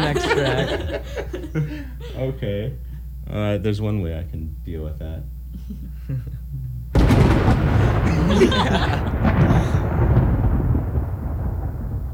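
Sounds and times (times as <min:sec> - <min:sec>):
laughter: 0:00.0 - 0:02.6, 0:05.6 - 0:06.8, 0:07.8 - 0:09.8
speech: 0:00.4 - 0:06.4, 0:07.4 - 0:10.1
thunder crack and rolling roar: 0:07.0 - 0:12.1.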